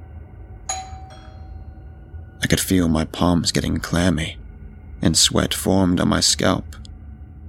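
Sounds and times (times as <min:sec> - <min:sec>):
low steady hum: 0:00.0 - 0:07.4
doorbell chiming a two-note ding-dong: 0:00.7 - 0:02.0
speech: 0:02.5 - 0:04.4, 0:05.0 - 0:06.9.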